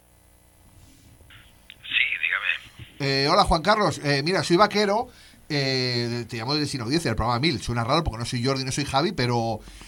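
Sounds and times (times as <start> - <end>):
faint telephone open-line hiss: 0.1 - 7.7
speech: 3.1 - 9.8.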